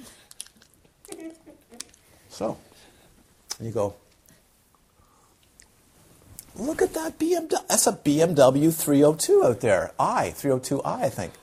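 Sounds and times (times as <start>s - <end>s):
wet smacking mouth noises: 0.0s - 2.1s, 3.4s - 5.8s
voice imitating a cow chewing its cud: 0.2s - 2.0s
speech: 2.4s - 2.7s, 3.6s - 4.0s, 6.6s - 11.4s.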